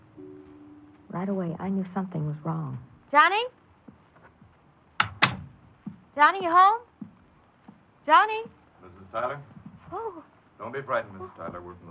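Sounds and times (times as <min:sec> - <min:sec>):
speech: 0:01.2 - 0:03.6, 0:06.2 - 0:06.9, 0:08.1 - 0:11.8
sharp loud latch-and-thud knocks of a door: 0:05.0 - 0:05.5
faint bump of a door settling: 0:05.0 - 0:06.0.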